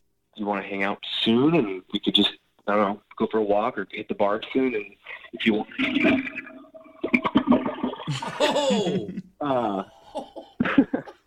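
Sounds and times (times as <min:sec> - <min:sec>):
speech: 0:00.4 - 0:06.5, 0:08.1 - 0:10.0
toilet flushing with gurgling rush of water: 0:05.3 - 0:08.4
person laughing: 0:08.0 - 0:11.2.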